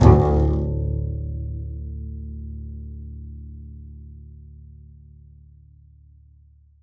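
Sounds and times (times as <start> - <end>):
double bass pizzicato: 0.0 - 4.2.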